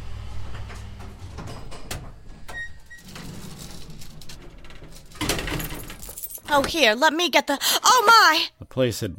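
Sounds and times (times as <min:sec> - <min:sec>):
elevator doors sliding open: 0:00.0 - 0:06.9
speech: 0:06.5 - 0:09.1.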